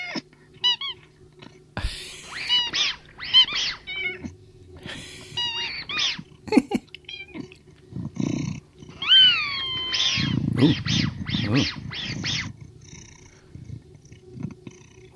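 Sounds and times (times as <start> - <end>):
grey kitten growling while playing on a sofa: 0.0 - 15.1
grey kitten meowing while playing on a sofa: 2.3 - 4.3, 5.4 - 6.2, 9.0 - 12.5
speech: 10.6 - 10.9, 11.5 - 11.8.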